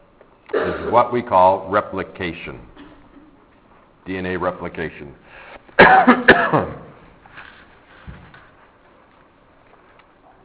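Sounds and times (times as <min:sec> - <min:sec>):
harsh coughing: 0:00.5 - 0:01.0, 0:05.8 - 0:07.0
throat clearing: 0:00.5 - 0:01.0, 0:05.8 - 0:07.0
speech: 0:00.8 - 0:02.7, 0:04.0 - 0:05.2, 0:05.8 - 0:06.8.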